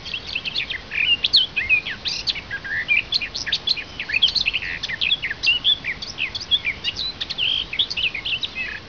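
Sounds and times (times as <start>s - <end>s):
birds: 0.0s - 8.8s
garden warbler: 0.0s - 8.8s.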